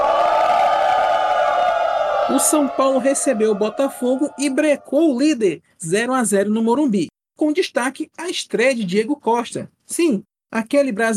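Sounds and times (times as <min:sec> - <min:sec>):
large stadium crowd booing: 0:00.0 - 0:05.2
speech: 0:02.3 - 0:11.1.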